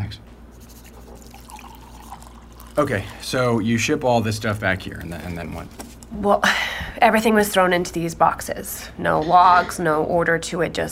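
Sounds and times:
low hum: 0.0 - 10.9
coffee poured steadily into a cup: 0.6 - 3.8
speech: 2.8 - 10.9.

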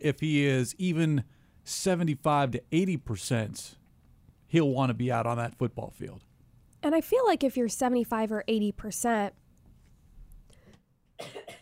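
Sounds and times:
speech: 0.0 - 3.8, 4.5 - 9.4, 11.2 - 11.4
coughs of a speaker with a cold: 11.2 - 11.6.

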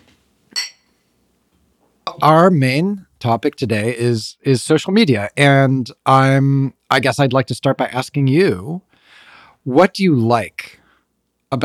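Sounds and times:
glasses of sour beer with guava nectar clinking in a toast: 0.5 - 1.0
speech: 2.2 - 8.9, 9.6 - 10.8.

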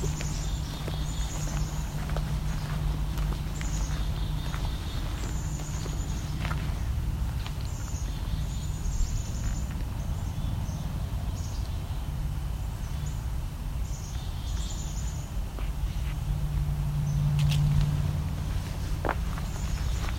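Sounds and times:
faint footsteps: 0.0 - 10.0, 15.5 - 16.2, 17.2 - 20.1
chickadees calling in a wildlife area: 0.0 - 16.2, 17.1 - 20.1
steady low rumble: 0.0 - 20.1.

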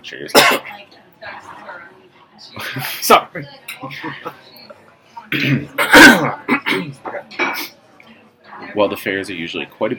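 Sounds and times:
speech: 0.0 - 4.6, 5.3 - 7.7, 8.7 - 9.9
person coughing: 0.4 - 0.7, 5.3 - 7.7.

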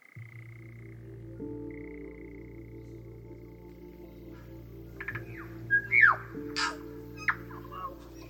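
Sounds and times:
cicadas droning during a Wellington summer: 0.0 - 8.2
tui calling during a Wellington summer: 5.0 - 8.2.

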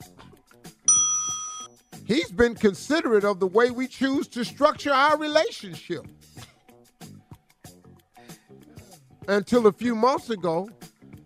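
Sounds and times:
bright bell ding: 0.9 - 1.7
speech: 2.1 - 6.4, 9.3 - 10.8.

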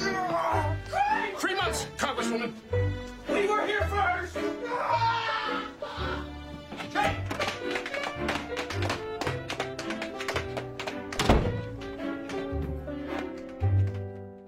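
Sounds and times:
tonal music-like background: 0.0 - 14.4
speech: 2.3 - 2.8
tap dancing footsteps just outside a door: 6.4 - 14.4.

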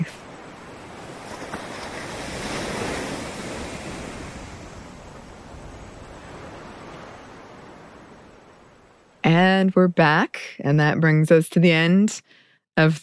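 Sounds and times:
wind rushing across the microphone: 0.0 - 9.2
ocean waves washing in and receding: 0.0 - 10.3
speech: 9.3 - 13.0.

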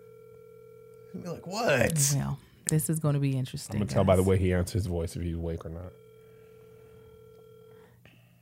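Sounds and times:
electronic phone ringback tone through a handset: 0.0 - 1.2, 5.7 - 7.8
speech: 1.1 - 6.0.

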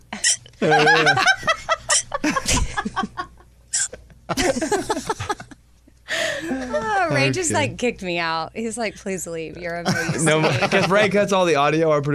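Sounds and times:
woman hiccuping: 0.2 - 0.4, 3.7 - 4.0
people chatting: 0.6 - 1.3, 6.5 - 12.1
speech: 0.6 - 1.6, 7.2 - 12.1
several people laughing and snickering: 0.6 - 3.4, 4.3 - 5.6, 9.9 - 11.2.

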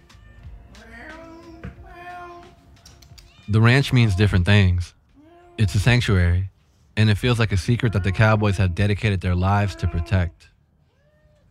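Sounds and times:
cat meowing with long wavering calls: 0.8 - 4.5, 5.2 - 5.9, 7.5 - 11.4
speech: 3.5 - 5.0, 5.6 - 10.5.

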